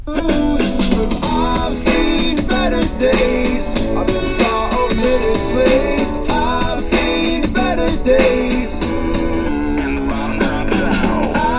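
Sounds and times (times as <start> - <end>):
song through a Bluetooth speaker fed from a computer: 0.0 - 11.5.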